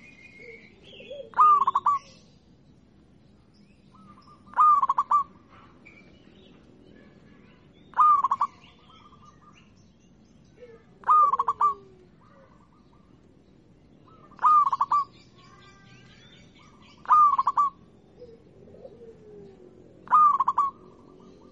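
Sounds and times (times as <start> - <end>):
zebra dove singing stuttered cooing notes: 0.0 - 2.2, 4.0 - 5.8, 7.9 - 9.2, 10.6 - 13.1, 14.1 - 15.2, 16.6 - 21.5.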